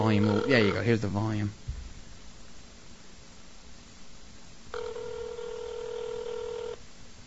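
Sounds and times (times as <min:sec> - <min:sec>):
telephone ringing tone of an outgoing call: 0:00.0 - 0:00.9, 0:04.7 - 0:06.8
constant hiss: 0:00.0 - 0:07.2
speech: 0:00.1 - 0:01.7.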